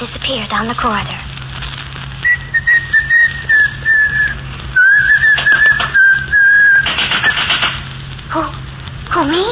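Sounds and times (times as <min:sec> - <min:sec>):
speech: 0:00.0 - 0:01.3, 0:09.2 - 0:09.5
low room hum: 0:00.0 - 0:09.5
person whistling a lilting tune: 0:02.2 - 0:07.4
clacking typewriter-like taps: 0:05.3 - 0:06.0, 0:06.8 - 0:07.8.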